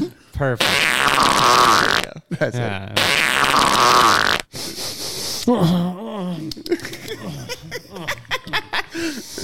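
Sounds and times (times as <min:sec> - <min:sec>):
speech: 0:00.0 - 0:04.7, 0:05.5 - 0:08.2
fart sound effect from a fart button: 0:00.6 - 0:02.1, 0:03.0 - 0:04.5
people chatting: 0:02.1 - 0:03.0, 0:05.5 - 0:09.1
people laughing: 0:02.1 - 0:03.0, 0:06.6 - 0:09.4.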